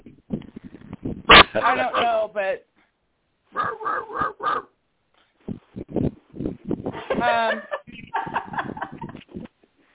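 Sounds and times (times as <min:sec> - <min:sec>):
dog barking: 0:01.3 - 0:02.2, 0:03.5 - 0:04.7
speech: 0:01.5 - 0:02.7, 0:07.2 - 0:07.7
laughter: 0:07.0 - 0:09.3.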